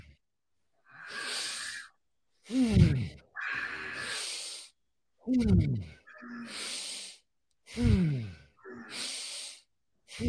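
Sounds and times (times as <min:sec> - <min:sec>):
long airy hissing breath during a breathwork exercise: 0:00.9 - 0:01.9, 0:03.5 - 0:04.8, 0:06.5 - 0:07.9, 0:08.5 - 0:10.2
voiced sighing breath falling in pitch during a breathwork exercise: 0:00.9 - 0:04.7, 0:06.0 - 0:10.2.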